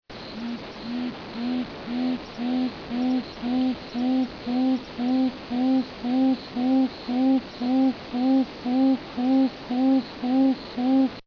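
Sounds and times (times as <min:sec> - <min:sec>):
tawny frogmouth calling: 0:00.3 - 0:11.2.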